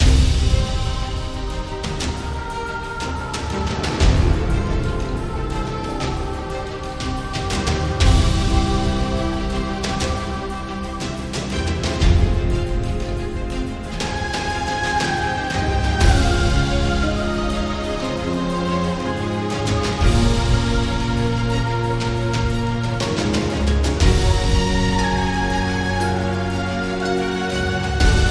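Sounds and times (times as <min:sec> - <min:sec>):
intense freespin ambience: 0:00.0 - 0:28.3.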